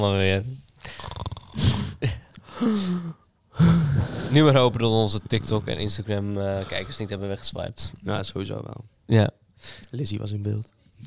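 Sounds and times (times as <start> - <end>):
speech: 0.0 - 11.0
person imitating snoring: 0.9 - 7.1.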